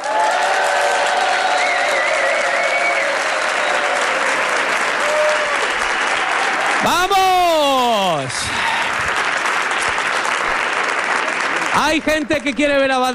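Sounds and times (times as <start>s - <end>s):
live audience at a comedy event cheering with shouts and whistles: 0.0s - 9.3s
live audience at a comedy event in a Madrid hall clapping: 0.0s - 13.1s
speech: 11.9s - 13.1s.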